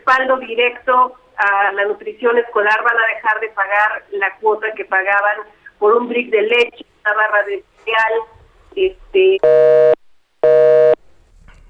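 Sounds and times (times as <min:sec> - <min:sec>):
speech: 0:00.1 - 0:10.8
telephone busy tone beeps after a phone call cutting off: 0:09.4 - 0:11.0.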